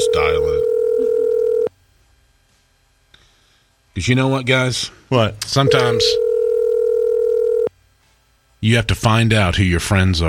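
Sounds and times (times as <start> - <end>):
telephone dial tone: 0.0 - 1.7, 5.7 - 7.7
speech: 4.0 - 6.2, 8.6 - 10.2.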